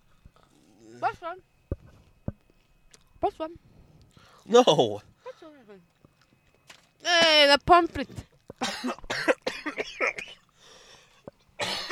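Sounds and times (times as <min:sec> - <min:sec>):
speech: 0:01.0 - 0:01.6, 0:03.2 - 0:03.7, 0:04.4 - 0:06.0, 0:07.0 - 0:10.4
people coughing in a cold car: 0:08.6 - 0:10.4, 0:11.6 - 0:11.9.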